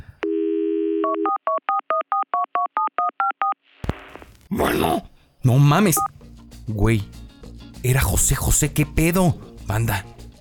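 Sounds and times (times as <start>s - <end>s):
telephone dial tone: 0.2s - 3.6s
speech: 4.5s - 6.1s, 6.7s - 7.2s, 7.8s - 10.1s.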